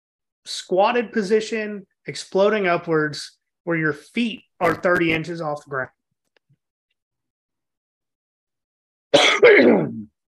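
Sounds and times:
speech: 0.4s - 6.0s
person coughing: 9.1s - 10.1s.

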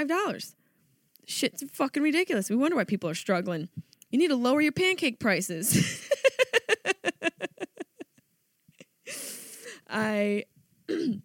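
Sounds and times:
speech: 0.0s - 0.6s, 1.3s - 6.3s, 9.9s - 11.2s
person laughing rhythmically: 5.7s - 8.2s
harsh raspy throat clearing: 10.9s - 11.2s.

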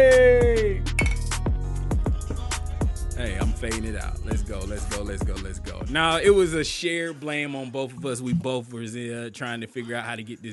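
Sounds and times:
loud backing track with deep booming bass hits and sustained tones: 0.0s - 6.8s
glasses clinking in a toast: 1.0s - 1.4s
speech: 3.6s - 10.5s.

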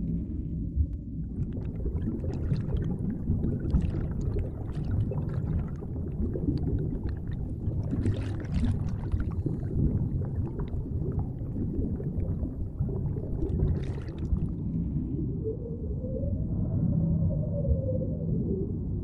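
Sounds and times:
dense steady low deep sea underwater rumble: 0.0s - 19.0s
slow rising and falling whale moan: 14.6s - 19.0s.

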